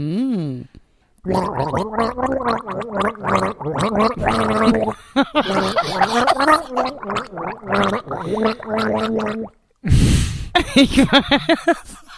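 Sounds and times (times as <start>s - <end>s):
person gargling water to a melody: 1.2s - 9.6s
speech: 1.2s - 12.1s
laughter: 4.5s - 7.0s, 10.6s - 12.1s.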